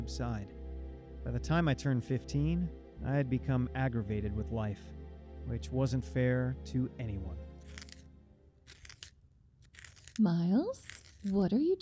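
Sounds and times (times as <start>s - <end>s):
speech: 0.0s - 0.6s, 1.2s - 7.8s, 10.2s - 11.8s
pencil being sharpened: 7.6s - 11.8s.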